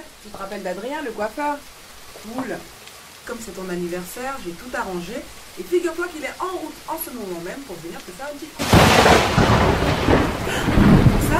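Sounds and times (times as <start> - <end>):
heavy rain hissing: 0.0 - 11.3
speech: 0.2 - 11.3
deep rumbling thunder: 8.6 - 11.3.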